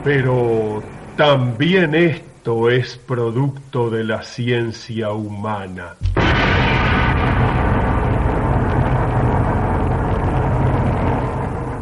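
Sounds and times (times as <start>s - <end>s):
speech: 0.0s - 6.2s
atomic bomb explosion roar: 6.0s - 11.8s.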